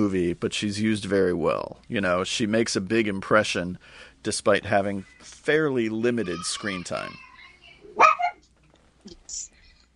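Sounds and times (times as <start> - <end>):
speech: 0.0 - 7.3
dog barking: 8.0 - 8.4.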